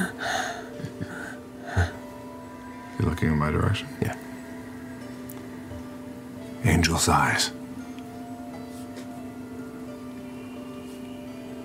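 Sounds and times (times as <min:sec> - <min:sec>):
heavy ragged breathing from a bloodied male drow: 0:00.0 - 0:02.1
speech: 0:03.0 - 0:04.2, 0:06.7 - 0:07.6.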